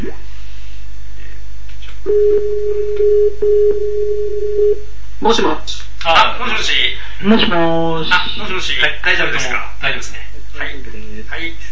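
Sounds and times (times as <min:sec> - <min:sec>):
speech: 0:00.0 - 0:00.3, 0:02.0 - 0:11.6
low hum: 0:00.0 - 0:11.6
low-pitched telephone line beep after a call is cut off: 0:02.1 - 0:04.8.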